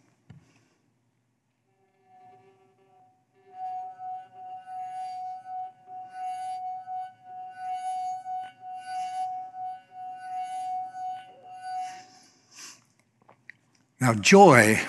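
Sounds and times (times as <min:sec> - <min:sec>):
drinking glass ringing as a finger circles its rim: 0:02.0 - 0:12.3
speech: 0:14.0 - 0:14.8.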